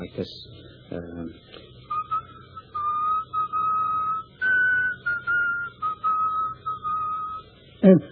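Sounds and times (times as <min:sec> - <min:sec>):
speech: 0:00.2 - 0:01.6, 0:07.9 - 0:08.1
man whistling a slow funeral march melody: 0:01.8 - 0:07.5.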